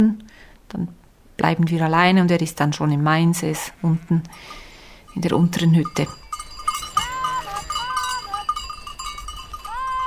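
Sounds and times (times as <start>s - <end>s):
speech: 0.0s - 6.2s
sheep bleating on an alpine pasture in the Swiss Alps while grazing: 3.6s - 4.3s, 6.8s - 8.6s, 9.6s - 10.0s
bells tinkling on an alpine pasture: 4.4s - 10.0s.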